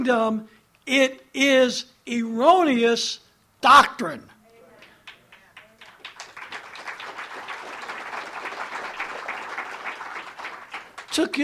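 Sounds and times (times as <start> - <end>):
speech: 0.0 - 4.3, 11.2 - 11.4
audience clapping: 4.8 - 11.4.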